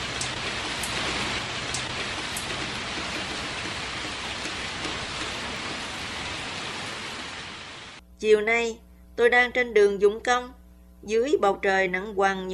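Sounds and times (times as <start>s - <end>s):
heavy rain pouring: 0.0s - 8.0s
speech: 8.2s - 12.5s.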